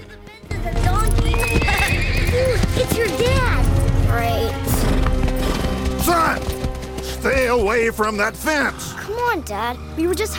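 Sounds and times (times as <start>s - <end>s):
black horse hooves pounding while cantering across grass near the stables: 0.0s - 8.2s
black horse whinnying: 1.3s - 3.0s
speech: 2.8s - 4.6s, 7.2s - 10.3s.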